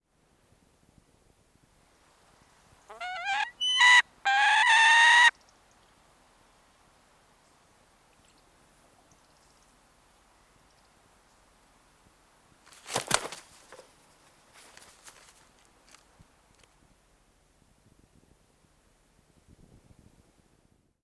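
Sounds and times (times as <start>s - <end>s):
peregrine falcon calling: 2.9s - 5.3s.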